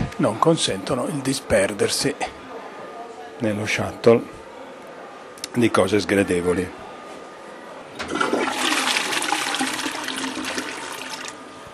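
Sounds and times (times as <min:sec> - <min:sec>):
speech: 0:00.2 - 0:02.4, 0:03.4 - 0:04.4, 0:05.5 - 0:06.8
toilet flushing: 0:08.0 - 0:11.4.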